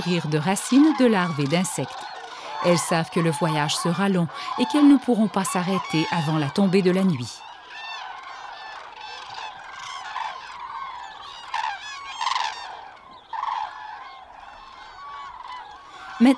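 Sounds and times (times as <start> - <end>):
speech: 0.0 - 7.4
chorus of cranes bugling and trumpeting: 0.0 - 16.3.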